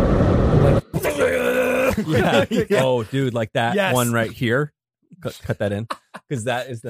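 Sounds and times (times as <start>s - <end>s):
person imitating a roaring Ferrari engine with their voice: 0.7s - 3.0s
laughter: 1.0s - 4.5s, 5.2s - 6.8s
speech: 2.0s - 6.8s.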